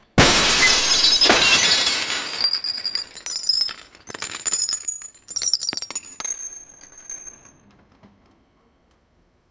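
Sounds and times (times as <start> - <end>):
expensive statue shattering into fragments: 0.0 - 4.7.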